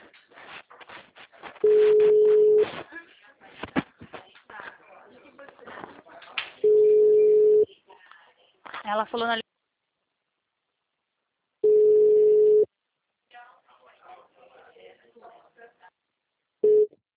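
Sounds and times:
ringback tones on a phone line while a call is placed: 1.6s - 2.7s, 6.6s - 7.6s, 11.6s - 12.7s
quiet talk: 2.7s - 8.9s, 13.3s - 16.1s
speech: 9.0s - 9.4s.

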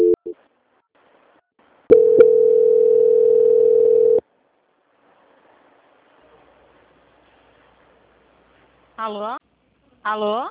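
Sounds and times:
steady single-pitched telephone line tone during a call transfer: 0.0s - 0.4s, 1.9s - 4.2s
speech: 9.1s - 9.4s, 10.0s - 10.4s.

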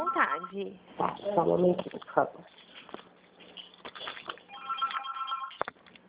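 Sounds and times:
telephone ringing with a bell-like burst: 0.0s - 0.6s, 4.5s - 5.6s
speech: 0.2s - 2.9s.

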